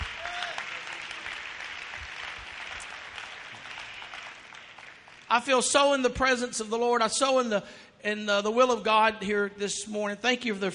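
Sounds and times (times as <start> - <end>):
audience clapping in a roomy space: 0.0 - 6.0
speech: 5.3 - 10.7.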